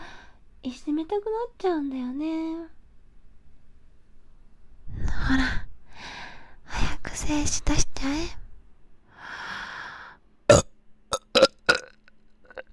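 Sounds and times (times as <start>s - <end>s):
speech: 0.6s - 2.8s, 5.1s - 5.7s, 7.2s - 8.4s
deep rumbling burp: 10.5s - 12.0s.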